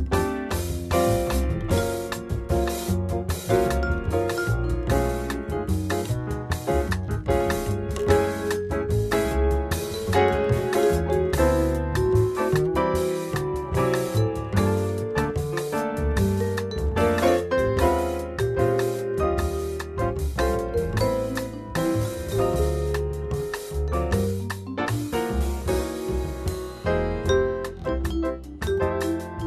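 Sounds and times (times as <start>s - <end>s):
steel drum playing: 0.2s - 29.3s.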